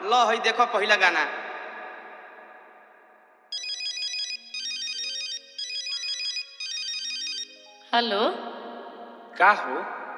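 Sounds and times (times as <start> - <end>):
speech: 0.1 - 1.4, 7.9 - 8.6, 9.4 - 10.0
phone ringtone with bright warbling electronic tones: 3.5 - 8.3.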